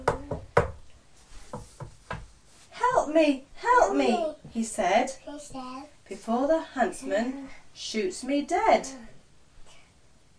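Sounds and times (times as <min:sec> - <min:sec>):
knocking at a door: 0:00.0 - 0:00.8
speech: 0:03.1 - 0:09.1.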